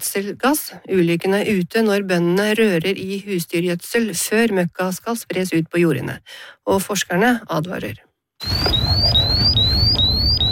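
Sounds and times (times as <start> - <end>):
speech: 0.0 - 9.2
manure gas detector alarm beeping in a livestock barn: 8.4 - 10.4.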